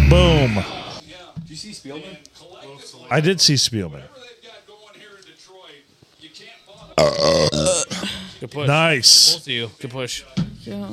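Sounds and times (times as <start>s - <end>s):
speech: 0.4s - 0.8s, 1.4s - 4.4s, 6.4s - 10.9s
loud burp: 7.0s - 8.1s.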